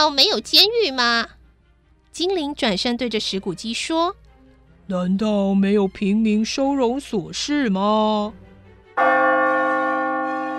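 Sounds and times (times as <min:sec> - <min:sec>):
speech: 0:00.0 - 0:01.4, 0:02.2 - 0:04.2, 0:04.9 - 0:08.4, 0:09.0 - 0:09.3
clock bell striking twelve o'clock: 0:09.0 - 0:10.5.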